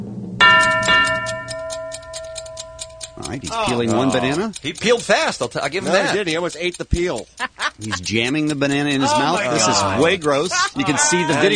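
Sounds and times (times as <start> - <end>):
sustained ringing tone: 0.4 - 4.4
clock ticking as a timer: 0.4 - 11.5
speech: 3.3 - 11.5
laughter: 3.5 - 11.5.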